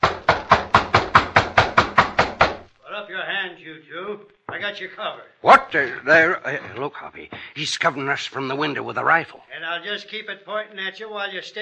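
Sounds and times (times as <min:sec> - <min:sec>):
loud knocking on a door: 0:00.0 - 0:02.7
speech: 0:03.8 - 0:11.6.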